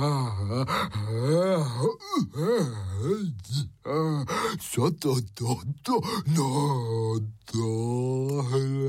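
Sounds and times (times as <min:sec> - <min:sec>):
speech: 0:00.0 - 0:03.3, 0:04.8 - 0:07.8
voice groaning as a fat breathless character: 0:00.0 - 0:04.5, 0:05.9 - 0:08.8
voice panting and gasping for breath: 0:00.0 - 0:04.7, 0:06.0 - 0:06.4.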